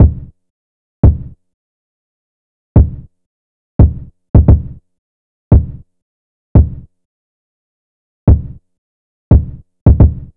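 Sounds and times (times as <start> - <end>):
kick drum: 0.0 - 0.3, 1.0 - 1.4, 2.8 - 3.1, 3.8 - 4.8, 5.5 - 5.9, 6.6 - 6.9, 8.3 - 8.6, 9.3 - 10.3.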